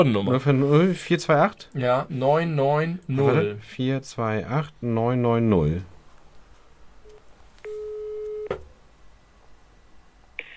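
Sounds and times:
speech: 0.0s - 5.9s
landline telephone line tone while calling a time announcement service: 7.1s - 8.6s.

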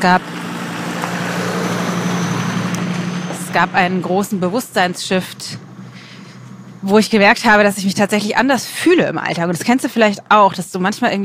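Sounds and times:
speech: 0.0s - 0.4s, 3.6s - 5.6s, 6.8s - 11.2s
car driving past: 0.0s - 6.9s.

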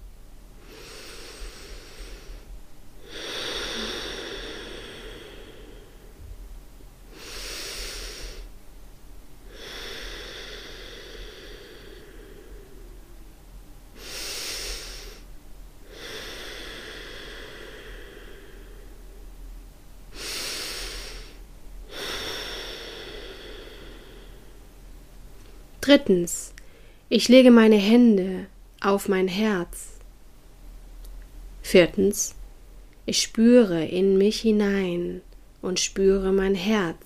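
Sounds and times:
slow deep breaths in and out through the nose in a relaxation exercise: 0.6s - 6.4s, 7.1s - 8.6s, 9.4s - 13.2s, 13.9s - 19.5s, 20.1s - 24.9s
speech: 25.8s - 26.5s, 27.1s - 29.9s, 31.7s - 32.4s, 33.1s - 37.0s.

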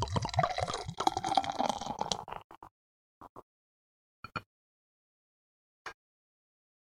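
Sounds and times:
drink pouring into a glass: 0.0s - 2.5s.

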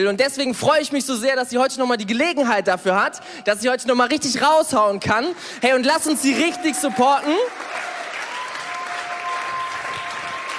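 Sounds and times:
speech: 0.0s - 7.9s
audience clapping: 6.0s - 10.5s.

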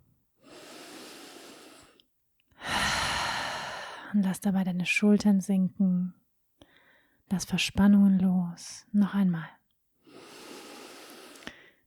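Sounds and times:
deep breathing exhaling through the open mouth: 0.4s - 2.0s, 2.6s - 4.2s, 10.0s - 11.8s
speech: 4.1s - 6.2s, 7.3s - 9.6s.

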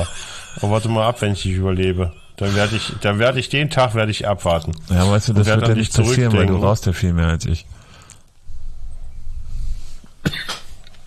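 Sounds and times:
speech: 0.6s - 7.8s
person coughing: 10.2s - 10.8s.

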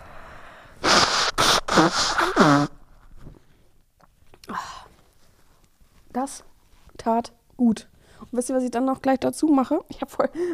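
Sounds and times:
person blowing nose: 0.8s - 3.1s
speech: 1.8s - 2.8s, 6.2s - 10.5s.

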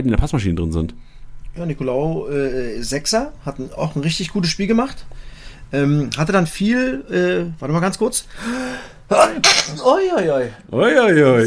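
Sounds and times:
speech: 0.0s - 11.4s
sharp sneeze with a breathy hissing release: 9.2s - 9.8s.

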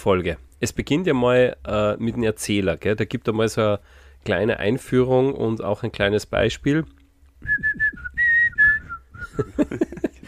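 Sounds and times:
speech: 0.0s - 7.9s, 9.4s - 10.2s
person whistling a short clear tune: 7.4s - 9.5s
laughter: 9.3s - 10.2s.

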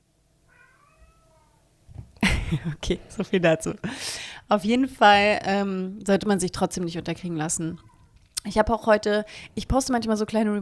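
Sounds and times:
house cat meowing: 0.5s - 1.7s
speech: 2.5s - 10.6s.

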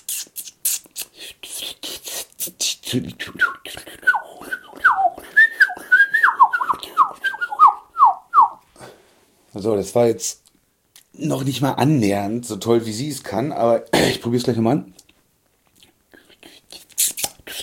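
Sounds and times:
speech: 2.9s - 3.8s, 9.6s - 10.4s, 11.2s - 15.0s
person whistling an imitation of blackcap song: 3.3s - 8.6s.

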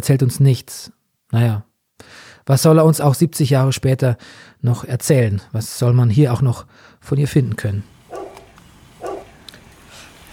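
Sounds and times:
speech: 0.0s - 8.0s
dog barking after being woken by a former churchyard: 8.0s - 9.5s
small clicks: 8.2s - 8.7s, 9.4s - 10.3s.

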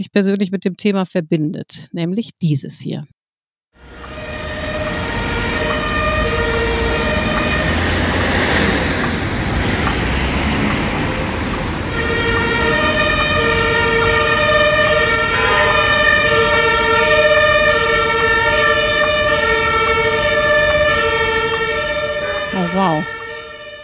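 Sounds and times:
speech: 0.0s - 3.2s, 22.8s - 23.2s
siren wailing: 3.8s - 9.6s, 11.0s - 23.8s
city traffic rumble: 3.8s - 23.8s.

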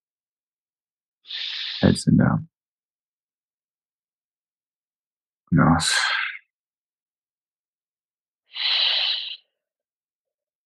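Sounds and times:
slow deliberate breathing during breathing exercise: 1.2s - 1.8s, 8.5s - 9.6s
speech: 1.2s - 2.5s, 5.5s - 6.2s.

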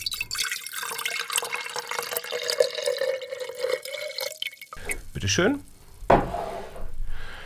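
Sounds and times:
water being poured into a glass: 0.0s - 5.0s
speech: 5.2s - 6.2s.

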